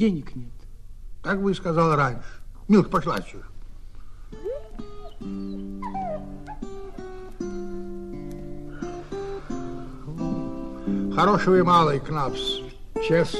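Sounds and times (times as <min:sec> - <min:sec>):
speech: 0:00.0 - 0:00.6, 0:01.2 - 0:03.5, 0:05.2 - 0:05.7, 0:11.2 - 0:13.3
dog whimpering and yipping: 0:04.4 - 0:07.2.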